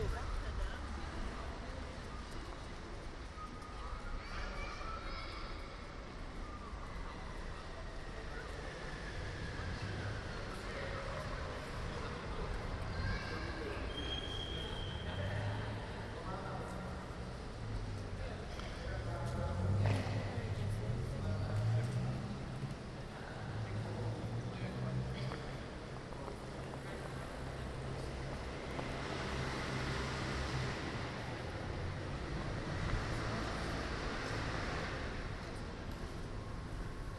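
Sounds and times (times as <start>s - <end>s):
city traffic: 0.0s - 37.1s
voices: 0.0s - 37.1s
loud vehicle passing: 19.3s - 22.7s, 27.5s - 35.8s
passing cars rumbling in the city: 19.4s - 26.0s, 26.7s - 37.1s.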